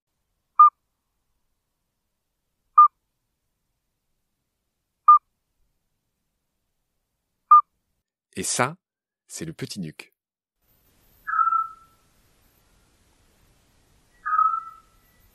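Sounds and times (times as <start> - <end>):
speech: 8.4 - 10.1
midwife toad whistled piping call: 11.2 - 12.0, 14.1 - 15.3.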